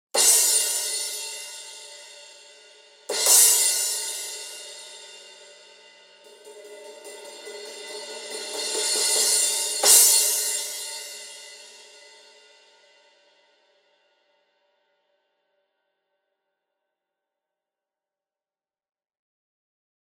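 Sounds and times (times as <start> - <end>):
resonant rock crash cymbal: 0.2 - 14.0.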